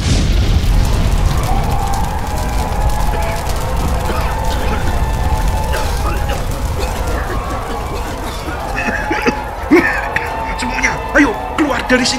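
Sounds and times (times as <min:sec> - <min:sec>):
large fire crackling around a building: 0:00.0 - 0:12.1
laughter: 0:02.6 - 0:12.1
speech: 0:11.9 - 0:12.1.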